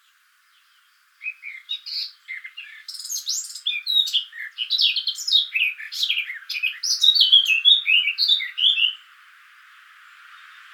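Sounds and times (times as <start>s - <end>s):
Eurasian blackcap Sylvia atricapilla song: 0.0s - 10.7s.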